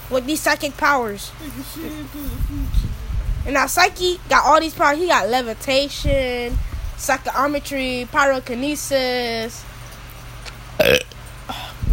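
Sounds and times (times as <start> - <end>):
speech: 0.1 - 9.7, 10.8 - 11.6
loud burp: 10.8 - 11.2
gulping vocal sound: 10.8 - 11.9.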